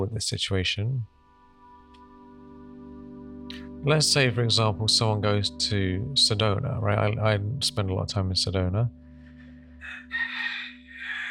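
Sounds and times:
speech: 0:00.0 - 0:01.1, 0:03.8 - 0:09.0
wild rooster crowing on Kauai: 0:09.8 - 0:11.2.

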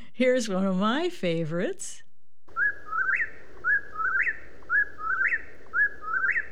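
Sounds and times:
low hum: 0:00.0 - 0:06.5
speech: 0:00.2 - 0:02.0
whippoorwill singing its three-part whistled call: 0:02.5 - 0:06.5.

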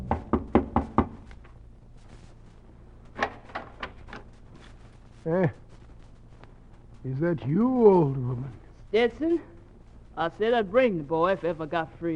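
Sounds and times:
woman knocking on the wooden door of a cabin: 0:00.0 - 0:01.2
quiet shuffling: 0:01.2 - 0:03.2, 0:03.9 - 0:12.1
speech: 0:05.2 - 0:05.6, 0:07.0 - 0:09.5, 0:10.2 - 0:12.1.

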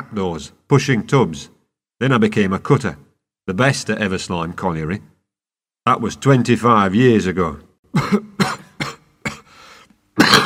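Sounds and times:
speech: 0:00.1 - 0:05.1, 0:05.8 - 0:08.3
violent harsh rasping coughing fit: 0:07.9 - 0:10.4
wheezy breath: 0:09.4 - 0:10.0.

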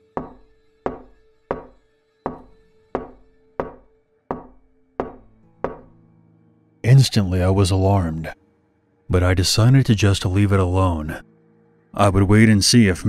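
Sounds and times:
heavy resonant knocking on a wooden door: 0:00.2 - 0:05.9
speech: 0:07.0 - 0:08.4, 0:09.1 - 0:11.3, 0:11.9 - 0:13.0.

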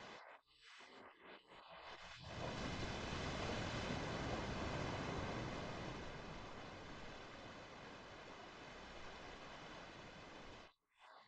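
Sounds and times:
ocean surf: 0:02.4 - 0:10.6.

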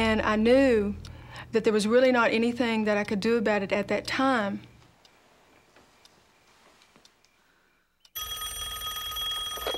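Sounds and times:
speech: 0:00.1 - 0:04.7
telephone ringing: 0:08.1 - 0:09.7.

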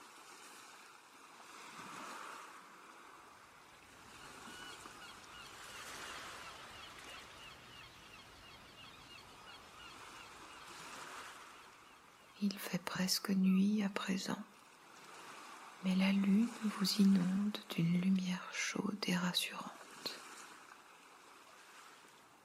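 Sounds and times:
ocean waves washing in and out: 0:00.0 - 0:22.4
gulls calling over the surf: 0:04.0 - 0:12.4
speech: 0:12.4 - 0:14.5, 0:15.8 - 0:19.8.

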